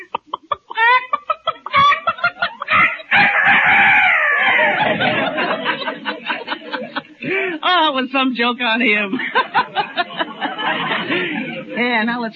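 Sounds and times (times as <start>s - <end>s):
laughter: 0.0s - 7.6s, 8.8s - 11.8s
voice imitating a rooster crowing into a telephone in a fix-it shop: 2.7s - 4.9s
speech: 8.0s - 9.4s, 11.8s - 12.3s.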